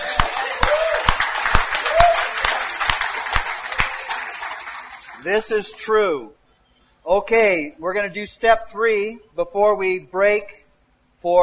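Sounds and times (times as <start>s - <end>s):
crowd clapping at a Christian church session: 0.0s - 5.8s
speech: 5.2s - 6.4s, 7.0s - 10.6s, 11.2s - 11.4s.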